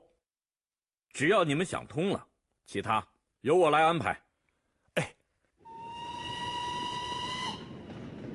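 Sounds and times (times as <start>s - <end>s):
speech: 1.2s - 4.2s
train steam whistle: 5.6s - 7.9s.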